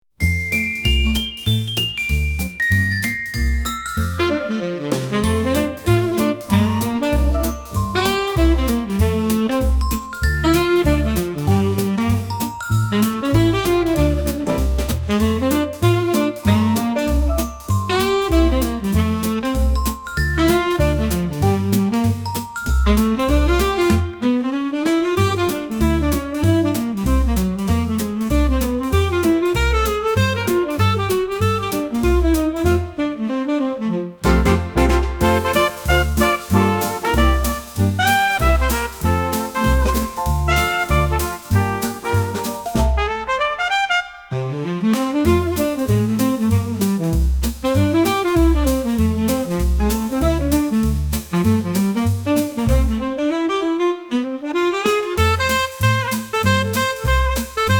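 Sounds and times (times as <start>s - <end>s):
Christmas jazz swing music: 0.0s - 57.7s
sleigh bells: 0.2s - 4.4s, 5.2s - 14.0s, 19.6s - 23.8s, 35.2s - 42.7s.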